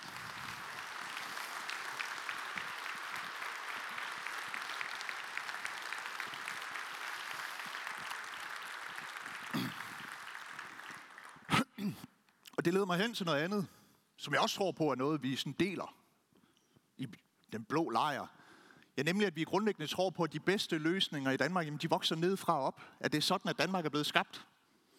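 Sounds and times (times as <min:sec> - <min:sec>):
large audience applause at a Danish party conference: 0:00.0 - 0:11.5
speech: 0:12.6 - 0:16.0, 0:17.0 - 0:18.4, 0:19.0 - 0:24.5.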